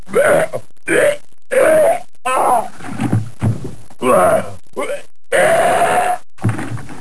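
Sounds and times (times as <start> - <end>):
person vomiting: 0.1 - 2.7, 4.0 - 6.3.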